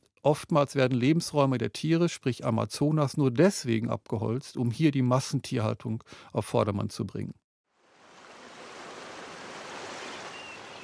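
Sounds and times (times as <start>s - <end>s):
speech: 0.2s - 7.4s
waves washing onto the North Sea coast as the tide comes in: 8.2s - 10.8s.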